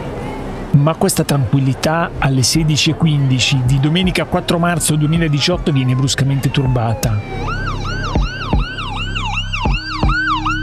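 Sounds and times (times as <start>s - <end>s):
low rumble of engines and traffic: 0.0s - 10.6s
speech: 0.8s - 7.5s
several ambulance sirens wailing: 2.5s - 10.6s.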